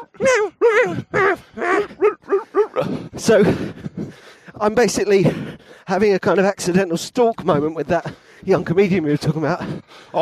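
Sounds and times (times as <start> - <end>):
dog barking in the distance: 0.0 - 2.8
speech: 3.2 - 3.8, 4.6 - 10.2.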